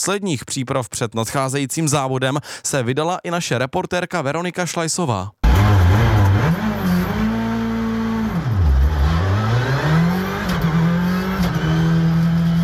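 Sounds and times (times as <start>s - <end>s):
speech: 0.0s - 6.1s
rally car engine revving during test: 5.4s - 12.6s.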